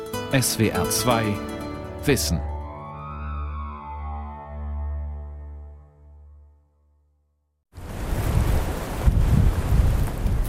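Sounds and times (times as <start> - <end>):
speech: 0.3 - 2.5
icy wind through holm oak treetops over a frosty truffle field near Uzès: 7.7 - 10.4.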